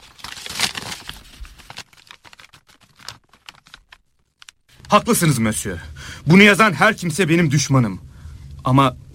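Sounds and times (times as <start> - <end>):
denunciation letter being unfolded, rustling and crinkling: 0.0 - 5.1
speech: 4.9 - 9.0.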